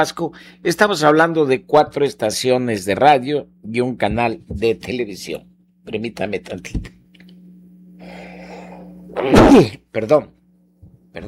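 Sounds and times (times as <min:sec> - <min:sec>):
speech: 0:00.0 - 0:07.0, 0:09.2 - 0:10.4
person sneezing: 0:09.1 - 0:09.8.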